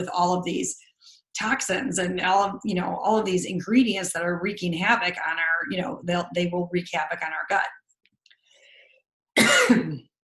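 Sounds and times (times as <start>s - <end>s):
speech: 0.0s - 0.8s, 1.4s - 7.8s, 9.4s - 10.1s
throat clearing: 9.4s - 10.1s.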